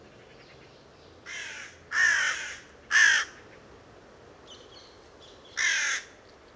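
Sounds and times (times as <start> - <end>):
carrion crow Corvus corone giving harsh rasping caws: 1.3 - 3.4, 5.6 - 6.1.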